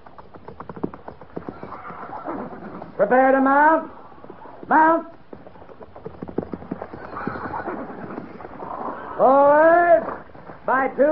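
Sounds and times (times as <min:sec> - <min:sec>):
cavalry horses' hooves clip-clopping at a walk as soldiers lead them: 0:00.0 - 0:11.1
speech: 0:03.0 - 0:04.0, 0:04.7 - 0:05.2, 0:09.2 - 0:09.7, 0:10.7 - 0:11.1.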